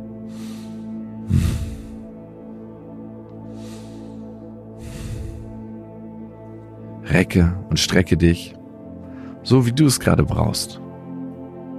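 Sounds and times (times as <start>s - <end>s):
steady sustained musical drone: 0.0s - 11.7s
deep deliberate breaths: 0.2s - 2.4s, 3.3s - 6.0s
speech: 7.1s - 8.6s, 9.5s - 10.8s.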